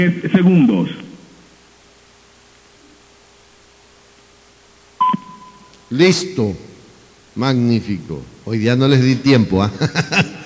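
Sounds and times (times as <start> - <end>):
speech: 0.0 - 1.0, 5.9 - 6.7, 7.4 - 10.4
radio time signal tone from an atomic clock: 5.0 - 5.9
laughter: 9.6 - 10.4.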